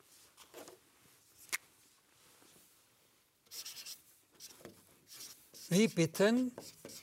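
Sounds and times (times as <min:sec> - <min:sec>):
writing a word on a board: 0:03.5 - 0:07.0
speech: 0:05.7 - 0:06.7.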